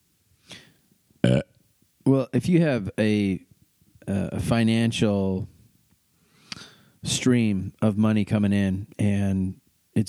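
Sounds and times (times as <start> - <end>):
burp: 1.2 - 1.6
speech: 2.3 - 3.5, 4.1 - 5.5, 7.0 - 10.0.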